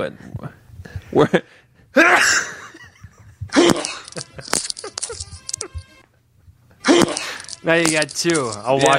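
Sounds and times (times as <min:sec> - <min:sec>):
speech: 0:00.0 - 0:00.4, 0:01.1 - 0:02.6, 0:07.7 - 0:08.9
laughter: 0:02.0 - 0:06.0
loud sharp sneezes against the microphone: 0:06.8 - 0:07.4.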